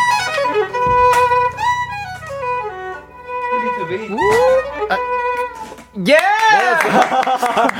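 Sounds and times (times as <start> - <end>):
solo violin playing a live passage: 0.0 - 6.0
speech: 6.0 - 7.7
laughter: 6.4 - 7.7.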